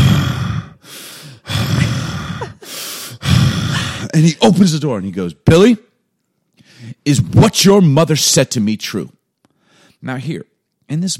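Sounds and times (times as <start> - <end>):
person imitating angry heavy breathing: 0.0 - 4.2
speech: 4.2 - 5.9, 7.0 - 9.2, 10.0 - 11.1.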